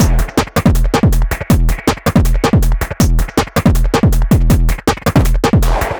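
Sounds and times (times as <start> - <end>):
music beat at 160 BPM: 0.0 - 5.9.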